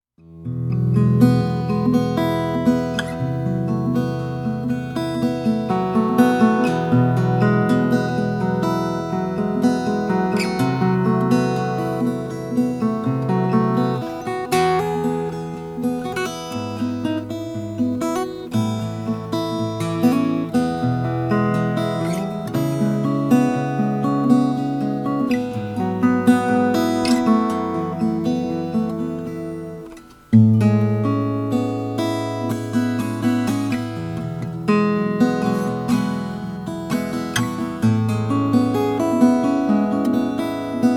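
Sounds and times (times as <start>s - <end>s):
Recording King RP1 326 mahogany acoustic guitar: 0.1s - 40.9s.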